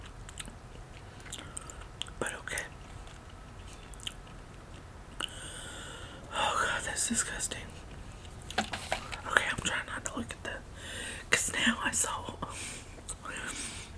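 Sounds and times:
low steady hiss: 0.0 - 13.9
wet mouth clicks chewing an earwax-flavoured jelly bean: 0.3 - 5.4
speech: 7.1 - 7.8.

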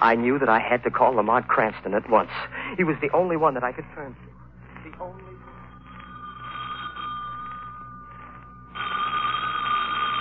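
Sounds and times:
speech: 0.0 - 4.4
old-fashioned telephone bell ringing: 5.1 - 10.2.

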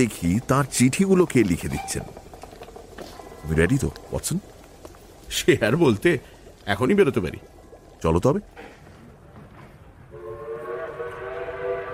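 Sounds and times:
speech: 0.0 - 2.2, 3.4 - 4.6, 5.3 - 8.7
morning train whistle: 10.1 - 11.9.

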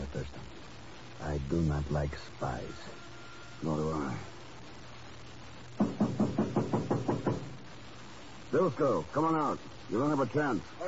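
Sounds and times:
speech: 1.2 - 4.4, 8.5 - 10.8
knocking on a door: 5.8 - 7.7.

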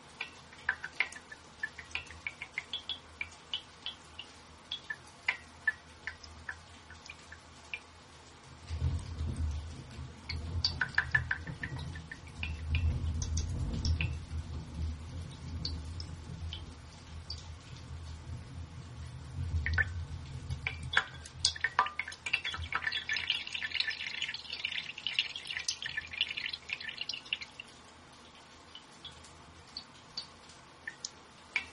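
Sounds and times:
sparse raindrops dripping and ticking at night: 0.0 - 31.7
deep rolling rumble of thunder at night: 8.7 - 20.9.

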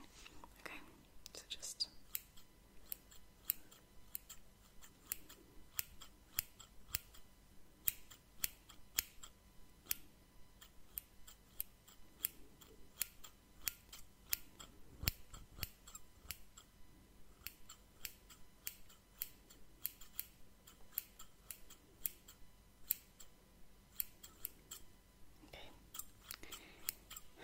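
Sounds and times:
soft rustling: 0.0 - 1.2
scissors cutting through cloth: 2.0 - 10.0, 10.6 - 16.7, 17.4 - 23.3, 23.9 - 24.9, 25.9 - 27.4.

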